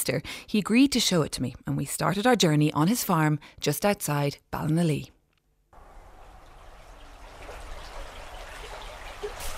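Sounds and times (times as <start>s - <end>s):
speech: 0.0s - 5.2s
river water flowing at a confluence on a farm near Ballinalee: 5.8s - 9.5s.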